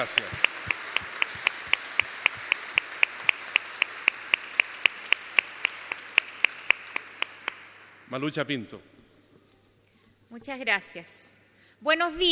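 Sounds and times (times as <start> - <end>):
speech: 0.0 - 0.5, 8.1 - 9.0, 10.3 - 12.3
audience clapping in unison at a citizens' meeting: 0.0 - 8.2.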